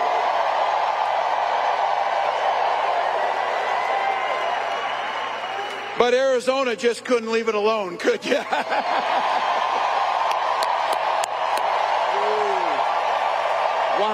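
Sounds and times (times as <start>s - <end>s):
rally crowd scattered sharp claps: 0.0s - 6.0s, 8.6s - 14.1s
large campaign rally crowd cheering in Detroit Michigan: 0.0s - 6.8s, 8.4s - 14.1s
speech: 6.1s - 9.4s, 14.0s - 14.1s
laughter: 8.2s - 10.0s
rally crowd member whooping: 12.0s - 12.9s.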